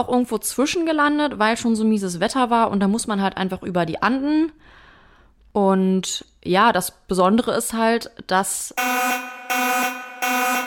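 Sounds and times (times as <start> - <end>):
speech: 0.0 - 4.8, 5.5 - 9.2
harsh electronic alarm buzzer blaring: 8.8 - 10.6.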